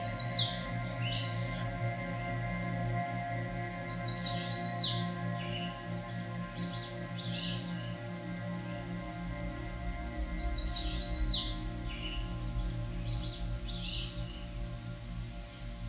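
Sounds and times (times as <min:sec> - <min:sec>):
Chestnut-sided Warbler song: 0:00.0 - 0:15.8
steady low hum: 0:00.0 - 0:15.8.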